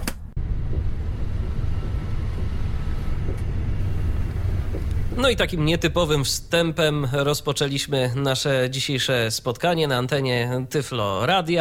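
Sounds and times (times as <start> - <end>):
Pendolino high-speed train rumbling in motion: 0.3 - 8.2
speech: 5.2 - 11.5.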